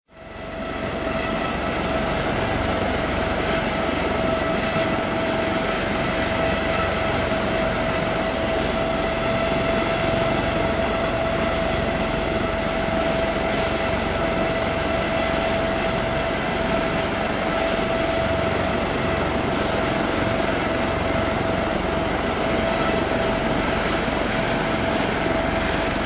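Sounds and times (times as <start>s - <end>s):
sea helicopter idling: 0.2s - 26.0s.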